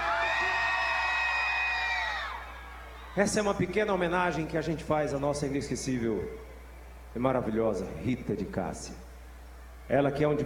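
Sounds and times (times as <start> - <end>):
audience whooping and cheering: 0.0 - 4.1
speech: 3.2 - 6.5, 7.1 - 9.1, 9.9 - 10.4.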